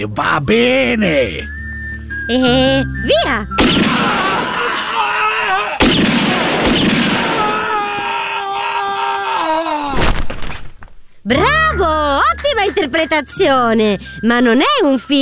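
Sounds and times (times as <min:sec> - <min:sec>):
speech: 0:00.0 - 0:01.6, 0:02.3 - 0:04.3, 0:11.3 - 0:15.2
gunshot sound effect in a comedy skit: 0:03.6 - 0:04.2, 0:05.8 - 0:07.5, 0:09.9 - 0:10.7
voice wailing and groaning: 0:03.9 - 0:05.8, 0:07.4 - 0:10.0.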